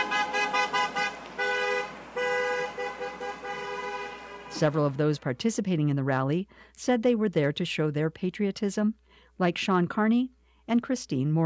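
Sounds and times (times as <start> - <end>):
car horns honking from passing vehicles: 0.0 - 5.0
steady traffic rumble: 0.0 - 6.7
speech: 4.6 - 11.4.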